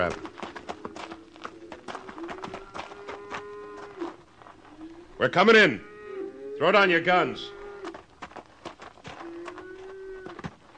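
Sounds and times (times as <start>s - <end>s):
speech: 0.0s - 0.3s, 5.2s - 5.9s, 6.6s - 7.6s
single horse's hooves clip-clopping: 0.0s - 5.0s, 7.6s - 10.7s.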